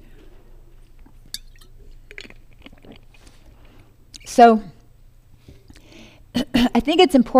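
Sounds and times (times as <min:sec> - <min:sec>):
low hum: 0:00.0 - 0:07.3
person sipping and swallowing water: 0:00.7 - 0:04.0
speech: 0:04.4 - 0:04.7, 0:06.8 - 0:07.3.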